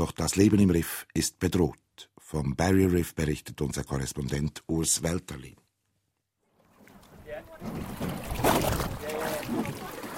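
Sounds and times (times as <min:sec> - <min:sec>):
speech: 0:00.1 - 0:05.6, 0:07.6 - 0:08.8
snorkelers splashing water beside a boat: 0:06.5 - 0:10.1
person dropping into water with a broadband splash: 0:07.6 - 0:10.1.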